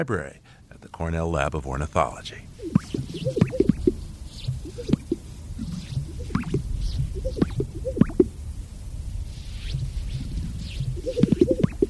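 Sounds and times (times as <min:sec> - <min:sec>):
speech: 0:00.0 - 0:03.7
Greater Sage-Grouse mating call with popping and gulping notes: 0:02.6 - 0:08.3, 0:09.7 - 0:11.8.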